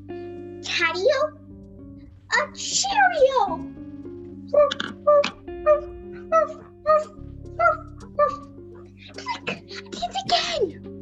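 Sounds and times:
speech: 0:00.7 - 0:01.4, 0:02.4 - 0:03.8, 0:04.5 - 0:08.5
person imitating dog barking and whimpering: 0:04.6 - 0:08.4.

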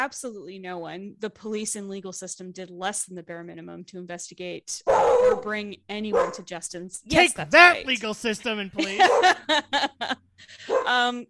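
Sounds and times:
speech: 0:00.0 - 0:11.2
dog barking: 0:04.9 - 0:05.5, 0:06.1 - 0:06.5, 0:08.9 - 0:09.4, 0:10.7 - 0:11.0
laughter: 0:08.8 - 0:10.7.

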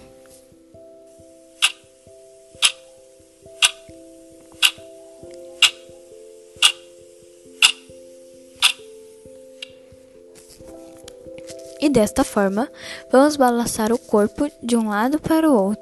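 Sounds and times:
soft sustained tones: 0:00.0 - 0:15.8
clock ticking: 0:01.6 - 0:01.9, 0:02.6 - 0:02.9, 0:03.5 - 0:03.9, 0:04.6 - 0:04.9, 0:05.6 - 0:05.9, 0:06.6 - 0:06.9, 0:07.6 - 0:07.9, 0:08.6 - 0:08.9
speech: 0:11.9 - 0:15.8.

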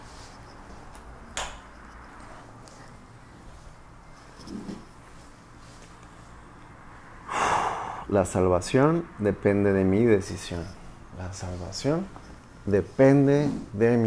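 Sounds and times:
low steady hiss: 0:00.0 - 0:14.0
slow deep breathing in through the nose and out through the mouth: 0:07.2 - 0:08.2
speech: 0:08.1 - 0:14.0.

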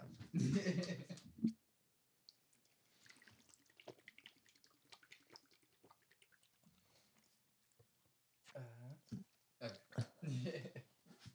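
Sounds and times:
speech: 0:00.3 - 0:01.1
laughter: 0:00.3 - 0:01.2, 0:10.0 - 0:10.8
water dripping: 0:02.2 - 0:08.1
water splashing in uneven spurts: 0:02.5 - 0:07.2
water pouring from a tap: 0:02.8 - 0:07.0.

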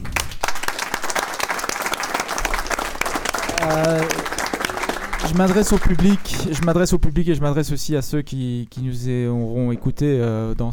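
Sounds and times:
audience applauding: 0:00.0 - 0:06.8
speech: 0:03.6 - 0:04.2, 0:05.3 - 0:10.7.

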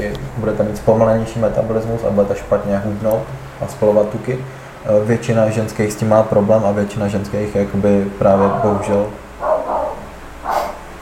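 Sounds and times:
speech: 0:00.0 - 0:09.2
quiet hum: 0:00.0 - 0:11.0
dog barking: 0:08.3 - 0:10.9.

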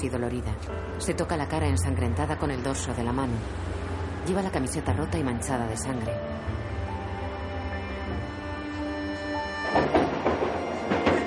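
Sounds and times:
speech: 0:00.0 - 0:06.6
metro train carriage running with low rumble and mechanical hum: 0:00.0 - 0:11.2
clattering bursts from a metro train carriage: 0:09.6 - 0:11.2.

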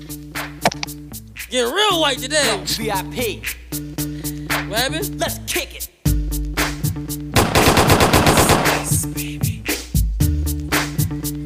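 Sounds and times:
steady bass-heavy music beat: 0:00.0 - 0:11.4
speech: 0:01.5 - 0:03.8, 0:04.7 - 0:05.9
scattered single gunshots: 0:07.4 - 0:09.0
loud rapid burst of machine gun fire: 0:07.4 - 0:09.1.

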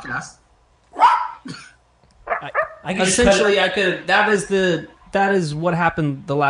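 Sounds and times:
speech: 0:00.0 - 0:00.4, 0:02.4 - 0:06.4
dog barking: 0:00.9 - 0:01.5, 0:02.3 - 0:02.9.

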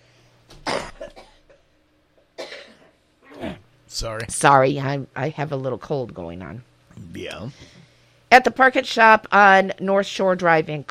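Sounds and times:
person coughing: 0:00.6 - 0:01.7, 0:02.4 - 0:03.6
speech: 0:03.9 - 0:10.8.

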